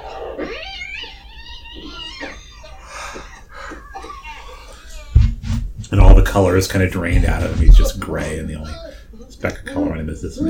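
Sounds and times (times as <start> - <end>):
cat wailing in long wavering yowls: 0.0 - 2.8
brief thump: 5.2 - 6.2, 7.1 - 7.9
steady low hum: 5.2 - 8.7
speech: 6.0 - 8.8, 9.4 - 10.4.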